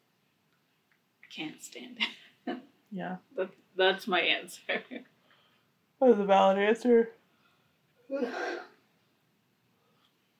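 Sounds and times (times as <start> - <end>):
speech: 1.3 - 5.1, 6.0 - 7.2, 8.1 - 8.7
person yawning: 8.1 - 8.7.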